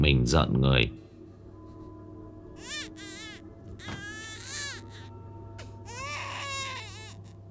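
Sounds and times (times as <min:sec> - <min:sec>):
low steady hum: 0:00.0 - 0:07.4
infant crying echoing down a dark corridor: 0:02.6 - 0:07.4.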